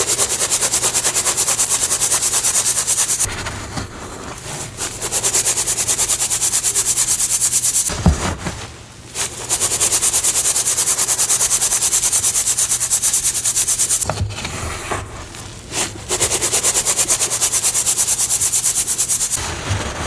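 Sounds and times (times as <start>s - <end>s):
reformed gym chalk slabs rubbed and crumbled: 0.0s - 20.0s
soft thuds: 7.9s - 8.7s.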